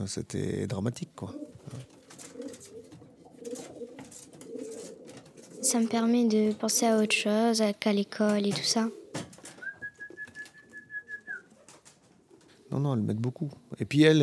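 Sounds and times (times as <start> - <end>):
speech: 0.0 - 1.9, 5.7 - 9.0, 12.8 - 14.2
hiss: 0.0 - 14.2
faint rustling: 1.2 - 7.2, 8.2 - 12.8
pigeons cooing: 1.2 - 13.1.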